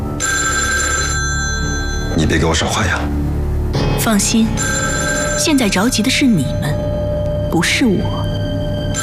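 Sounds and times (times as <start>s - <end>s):
telephone ringing with a trilling burst: 0.2s - 2.2s, 4.4s - 7.2s, 8.0s - 9.0s
speech: 2.3s - 3.2s, 4.0s - 6.7s, 7.5s - 8.2s.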